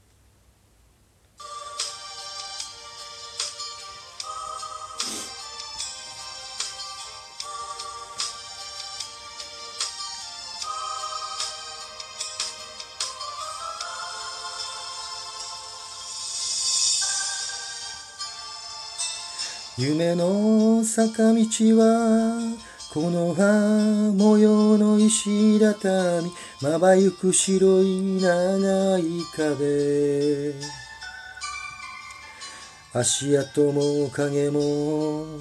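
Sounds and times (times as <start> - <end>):
bright ringing melodic tones in an instrumental song intro: 5.8 - 35.3
speech: 19.8 - 30.8, 33.0 - 35.3.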